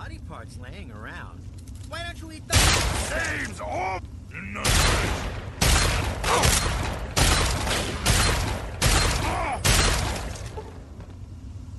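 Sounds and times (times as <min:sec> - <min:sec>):
speech: 0:00.4 - 0:05.4
video game gunfire shooting a cockroach beside a super mutant: 0:04.6 - 0:10.3.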